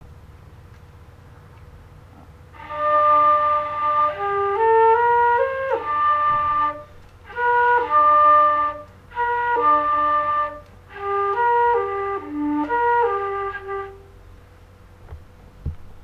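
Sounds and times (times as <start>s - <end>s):
classical flute music: 2.6s - 14.3s.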